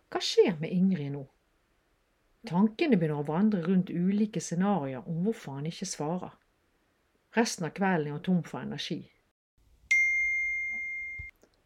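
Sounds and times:
speech: 0:00.1 - 0:01.4, 0:02.4 - 0:06.4, 0:07.3 - 0:09.1
phone message notification chime: 0:09.9 - 0:11.3.

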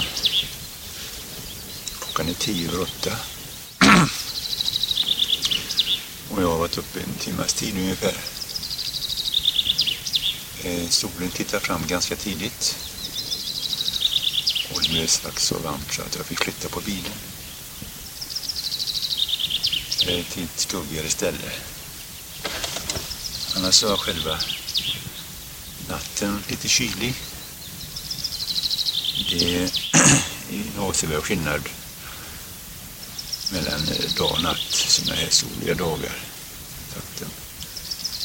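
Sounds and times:
birds singing and chirping outdoors: 0:00.0 - 0:38.2
speech: 0:02.2 - 0:03.3, 0:04.0 - 0:04.2, 0:06.4 - 0:08.4, 0:10.6 - 0:12.9, 0:14.9 - 0:17.9, 0:20.0 - 0:21.8, 0:23.6 - 0:25.0, 0:25.9 - 0:27.3, 0:29.3 - 0:29.8, 0:30.8 - 0:31.8, 0:33.5 - 0:36.4.

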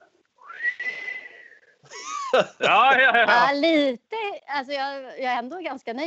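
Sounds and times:
person attempting to whistle with a breathy airy rush: 0:00.4 - 0:01.6
laughter: 0:01.9 - 0:03.5
speech: 0:02.3 - 0:06.0.

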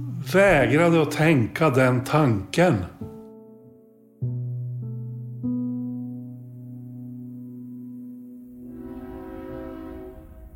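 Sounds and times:
speech: 0:00.3 - 0:03.1
train horn blast: 0:08.6 - 0:10.5.

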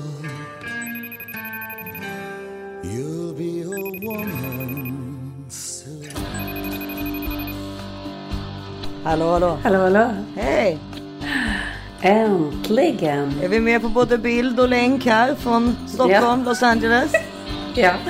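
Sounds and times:
outgoing phone call melodic electronic ringing tone: 0:00.9 - 0:02.2, 0:03.7 - 0:05.0, 0:06.3 - 0:07.6
speech: 0:09.1 - 0:10.9, 0:12.0 - 0:18.0
laughter: 0:16.1 - 0:18.0.

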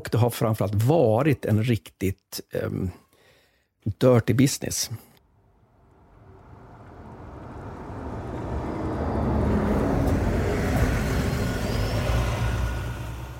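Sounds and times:
speech: 0:00.1 - 0:03.0, 0:03.8 - 0:05.1
engine of a dirty heavily loaded Volkswagen bus carrying berries roaring: 0:05.4 - 0:13.3.

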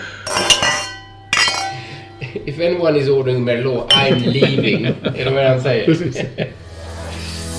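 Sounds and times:
glasses clinking in a toast: 0:00.2 - 0:02.4, 0:03.9 - 0:04.7
speech: 0:02.4 - 0:06.6
laughter: 0:04.2 - 0:06.6.

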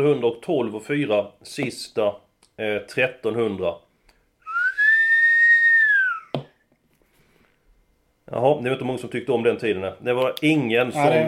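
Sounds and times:
speech: 0:00.0 - 0:03.8, 0:08.3 - 0:11.2
person whistling one long steady note: 0:04.4 - 0:06.4.

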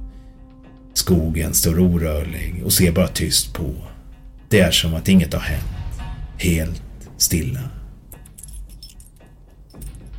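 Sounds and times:
speech: 0:01.0 - 0:05.8, 0:06.4 - 0:07.8
car keys jangling: 0:08.1 - 0:10.1.

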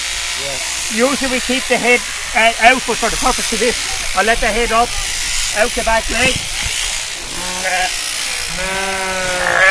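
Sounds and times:
steady mechanical buzz: 0:00.0 - 0:09.6
speech: 0:00.4 - 0:06.6, 0:07.6 - 0:09.3
sheep bleating: 0:07.3 - 0:09.6.

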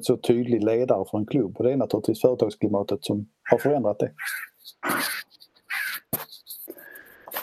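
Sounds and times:
speech: 0:00.0 - 0:05.3
harsh raspy bird screeches: 0:03.5 - 0:06.5.

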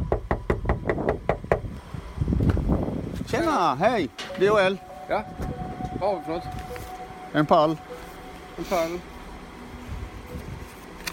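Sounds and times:
rapid knocking on a factory door in Glumslöv, Skåne, Sweden: 0:00.0 - 0:01.7
speech: 0:03.3 - 0:06.6, 0:07.3 - 0:08.0, 0:08.6 - 0:09.1.

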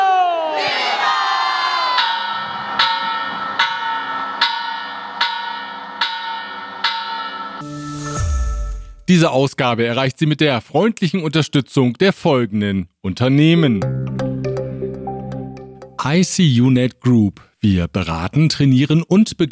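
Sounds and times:
crowd cheering and shouting at the Grito in Mexico: 0:00.0 - 0:02.8
large independence bell ringing at the Grito in Mexico: 0:02.0 - 0:09.1
speech: 0:09.1 - 0:14.2, 0:16.0 - 0:19.5.

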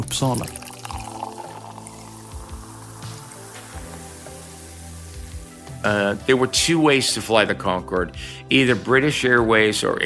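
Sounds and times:
champagne pouring into a glass with fizzy hiss: 0:00.0 - 0:07.4
speech: 0:00.1 - 0:00.6, 0:05.8 - 0:10.0.

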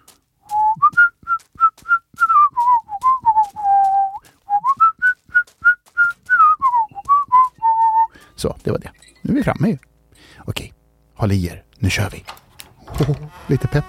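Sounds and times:
walking clicks and rustles: 0:00.0 - 0:10.2
person whistling a lively tune while walking: 0:00.5 - 0:08.2
speech: 0:08.4 - 0:09.9, 0:11.2 - 0:12.4, 0:13.0 - 0:13.8.

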